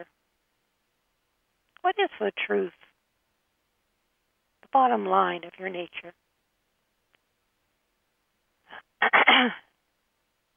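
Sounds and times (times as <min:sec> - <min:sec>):
speech: 0:00.0 - 0:00.2, 0:01.8 - 0:02.8, 0:04.7 - 0:06.2, 0:08.7 - 0:09.6
person clearing throat: 0:09.0 - 0:09.7.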